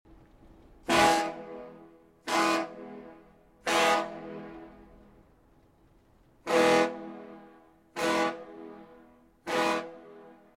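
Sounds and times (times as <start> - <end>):
ferry boat ship horn blasts: 0.8 - 5.1, 6.4 - 10.5.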